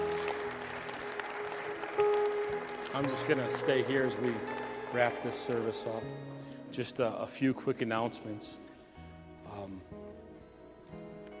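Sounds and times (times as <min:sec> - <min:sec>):
congregation clapping together: 0:00.0 - 0:06.3
speech: 0:03.0 - 0:08.6, 0:09.6 - 0:10.0.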